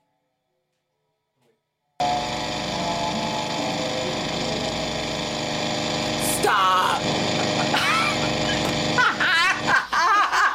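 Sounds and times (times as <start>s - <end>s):
lawn mower engine running: 2.0s - 9.8s
laughter: 7.2s - 10.5s.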